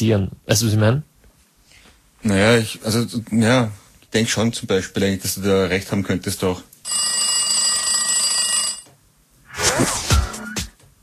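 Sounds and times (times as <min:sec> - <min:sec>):
speech: 0:00.0 - 0:01.1, 0:02.2 - 0:07.1
telephone ringing with electronic trill: 0:06.8 - 0:08.9.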